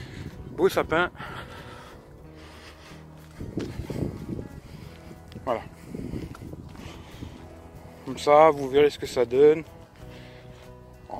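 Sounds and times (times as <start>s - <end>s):
wind buffeting a phone microphone while walking outdoors: 0.0s - 2.2s, 3.2s - 8.1s
speech: 0.6s - 1.5s, 5.5s - 5.7s, 8.1s - 9.8s.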